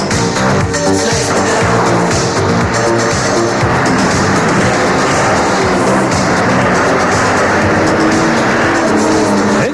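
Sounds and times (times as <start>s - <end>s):
dense gritty mechanical wash: 0.1s - 9.7s
racing motorbike engine roaring and accelerating: 0.2s - 9.7s.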